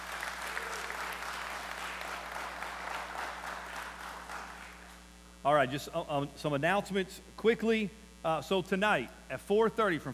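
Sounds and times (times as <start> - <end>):
audience applauding: 0.0 - 5.0
soft hum: 0.0 - 10.1
speech: 5.4 - 10.1.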